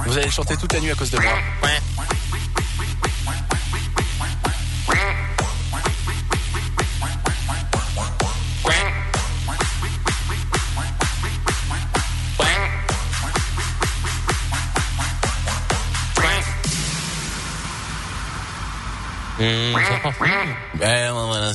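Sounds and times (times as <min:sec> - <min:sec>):
looping beat: 0:00.0 - 0:21.5
speech: 0:00.1 - 0:02.4, 0:19.4 - 0:21.5
ducks quacking: 0:01.0 - 0:13.5, 0:16.1 - 0:16.7, 0:19.4 - 0:20.9.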